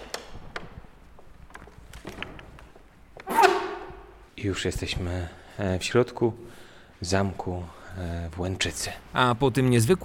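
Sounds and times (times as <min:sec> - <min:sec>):
heavy castle door creaking and scraping open: 0:01.9 - 0:04.2
speech: 0:04.4 - 0:10.0.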